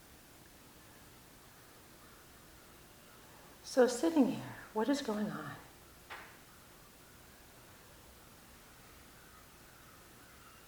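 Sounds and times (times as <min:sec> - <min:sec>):
quiet hiss: 0:00.0 - 0:10.6
crow cawing: 0:02.0 - 0:02.4, 0:09.0 - 0:10.6
speech: 0:03.7 - 0:05.6.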